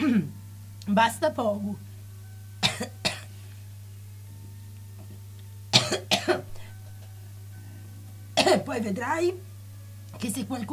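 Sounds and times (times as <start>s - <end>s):
person coughing: 0.0s - 0.4s, 2.6s - 3.3s, 5.8s - 6.7s, 8.4s - 8.7s
speech: 0.0s - 1.9s, 2.8s - 3.0s, 5.9s - 6.5s, 8.6s - 9.5s, 10.2s - 10.7s.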